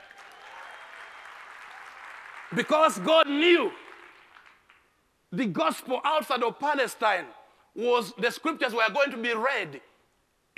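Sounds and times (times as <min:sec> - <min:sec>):
crowd applauding: 0:00.0 - 0:03.2, 0:03.8 - 0:04.9
speech: 0:02.5 - 0:03.8, 0:05.3 - 0:09.9.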